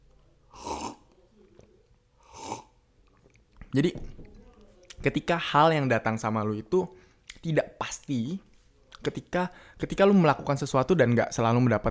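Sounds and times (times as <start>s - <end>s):
person slurping coffee: 0.5s - 1.1s, 2.2s - 3.3s
speech: 3.7s - 4.3s, 5.0s - 11.8s.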